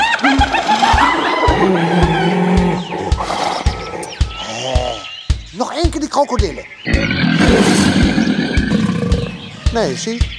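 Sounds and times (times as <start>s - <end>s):
hyenas laughing: 0.0s - 5.1s, 6.9s - 9.6s
steady rhythmic thumping beat: 0.0s - 10.3s
speech: 6.2s - 6.8s, 9.8s - 10.3s.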